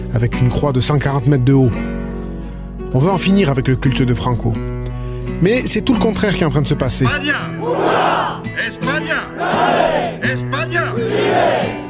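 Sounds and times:
speech: 0.2s - 1.9s, 2.9s - 11.8s
crowd of right-wing demonstrators chanting a slogan at a protest: 7.6s - 8.4s, 9.3s - 10.2s, 11.0s - 11.8s.

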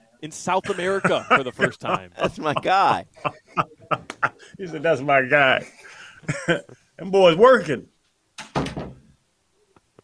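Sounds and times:
speech: 0.2s - 7.9s
laughter: 0.6s - 6.8s
closet door rattling: 8.4s - 9.0s
closet door closing: 8.4s - 9.1s.

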